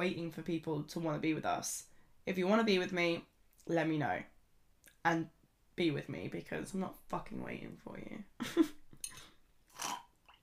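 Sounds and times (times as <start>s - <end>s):
speech: 0.0s - 4.3s, 5.0s - 8.8s
person slurping a sip of hot coffee: 9.7s - 10.4s.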